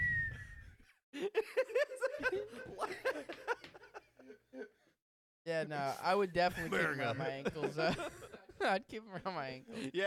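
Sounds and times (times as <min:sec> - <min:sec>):
person whistling an imitation of an eagle call: 0:00.0 - 0:00.8
laughter: 0:01.2 - 0:04.9, 0:06.4 - 0:10.0
speech: 0:05.5 - 0:10.0.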